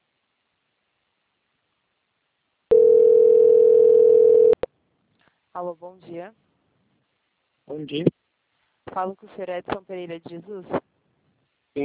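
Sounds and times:
telephone line tone while a bank call is transferred: 0:02.7 - 0:04.6
speech: 0:05.6 - 0:06.5, 0:07.7 - 0:08.2, 0:08.9 - 0:10.9.

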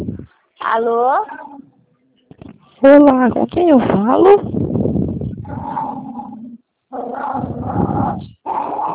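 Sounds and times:
speech: 0:00.7 - 0:01.4, 0:02.8 - 0:04.6
dog growling and barking over a telephone line: 0:05.4 - 0:08.9.

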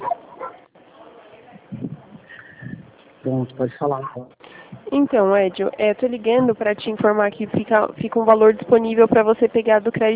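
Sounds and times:
dog barking faintly in the background of a phone call: 0:00.0 - 0:00.7
low indistinct voices: 0:00.0 - 0:10.1
speech: 0:03.2 - 0:10.1.

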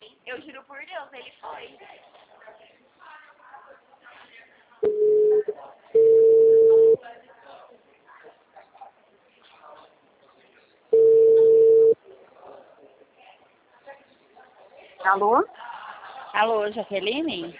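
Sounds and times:
speech: 0:00.3 - 0:02.6, 0:15.2 - 0:15.6, 0:16.4 - 0:17.5
telephone line tones after a dropped phone call: 0:06.0 - 0:07.0, 0:11.0 - 0:12.0.

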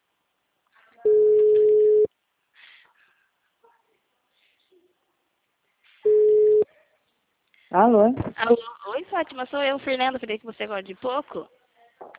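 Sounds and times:
ringback tone on an outgoing phone call: 0:01.1 - 0:02.1, 0:06.1 - 0:06.6
speech: 0:07.8 - 0:11.6.

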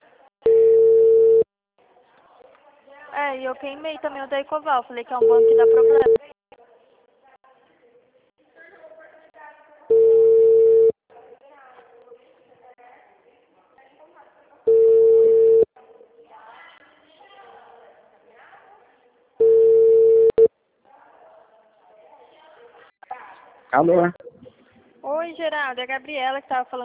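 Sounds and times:
telephone beeps after a dropped call: 0:00.5 - 0:01.5, 0:05.2 - 0:06.2, 0:09.9 - 0:11.0, 0:14.7 - 0:15.7, 0:19.4 - 0:20.5
speech: 0:03.2 - 0:06.2, 0:23.8 - 0:24.2, 0:25.4 - 0:26.8.

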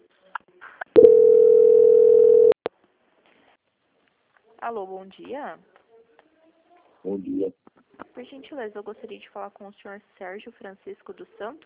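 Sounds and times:
steady single-pitch telephone line tone during call transfer: 0:01.0 - 0:02.6
speech: 0:04.7 - 0:05.8, 0:07.0 - 0:07.6, 0:08.2 - 0:11.6.

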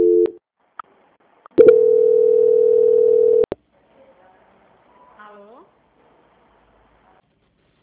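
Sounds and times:
telephone call transfer tone while on hold: 0:00.0 - 0:00.4, 0:01.6 - 0:03.5.

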